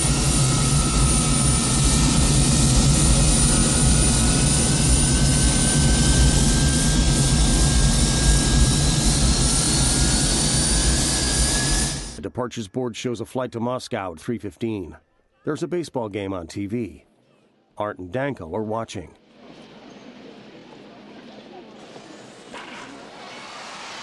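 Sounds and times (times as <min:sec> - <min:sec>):
jet engine roar of a 747 airliner taxiing to a terminal: 0:00.0 - 0:12.2, 0:19.3 - 0:24.0
speech: 0:12.4 - 0:17.1, 0:17.8 - 0:19.2.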